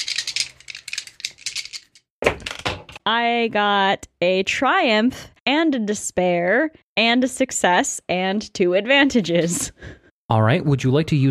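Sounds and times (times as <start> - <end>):
dice shaken and tumbling during a tabletop role-playing game: 0.0 - 2.7
speech: 3.1 - 11.2.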